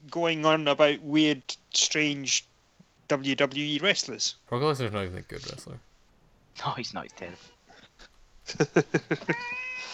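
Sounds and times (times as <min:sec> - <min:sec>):
speech: 0:00.1 - 0:02.5, 0:03.1 - 0:05.9, 0:06.6 - 0:07.6, 0:08.5 - 0:09.9
cat meowing: 0:09.3 - 0:09.9.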